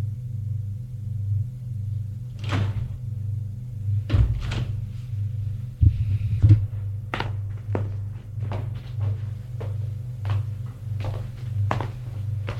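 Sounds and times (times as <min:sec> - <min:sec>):
steady low elevator motor hum: 0:00.0 - 0:12.5
elevator doors clattering and thunking shut: 0:02.3 - 0:03.1, 0:04.0 - 0:05.4.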